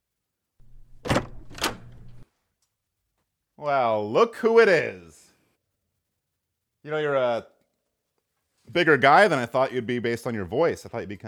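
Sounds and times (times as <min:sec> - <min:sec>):
front door opening: 0:00.6 - 0:02.2
speech: 0:03.6 - 0:05.2, 0:06.8 - 0:07.5, 0:08.7 - 0:11.2.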